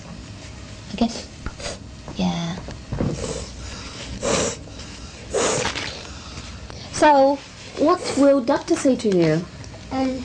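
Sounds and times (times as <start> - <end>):
sharp noisy snorts: 3.1 - 6.0
wet congested sniffing with a runny nose: 3.2 - 6.6
speech: 7.0 - 10.2.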